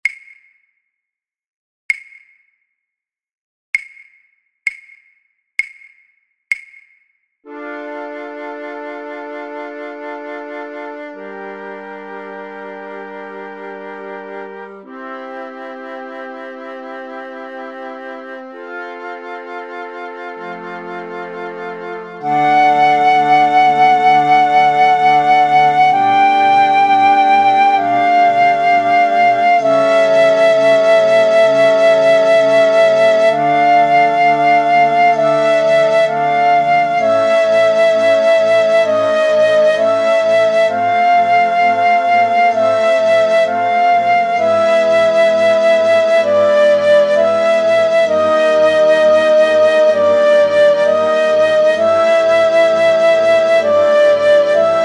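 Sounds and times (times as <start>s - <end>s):
flute choir playing main theme: 7.5s - 54.8s
piccolo: 7.5s - 54.8s.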